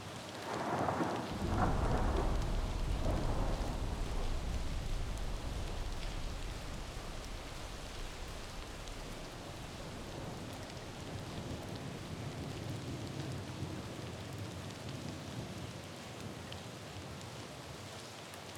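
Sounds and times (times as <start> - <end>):
light rain in a city: 0.0 - 18.5
thunder peal: 0.6 - 12.2.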